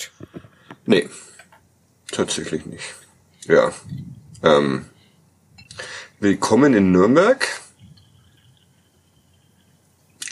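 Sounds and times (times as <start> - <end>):
speech: 0.9 - 1.3, 2.2 - 4.9, 6.2 - 7.6
sparkling water trickling into a glass: 7.7 - 10.3.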